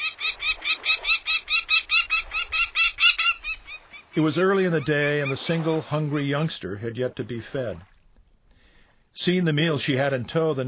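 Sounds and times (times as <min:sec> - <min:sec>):
female falcon carrying prey calling across a bay: 0:00.0 - 0:05.9
speech: 0:04.2 - 0:07.9, 0:09.2 - 0:10.6.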